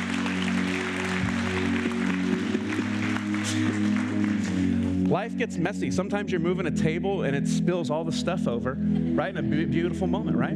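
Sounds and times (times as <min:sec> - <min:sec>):
crowd applauding: 0:00.0 - 0:05.2
speech: 0:05.1 - 0:10.5.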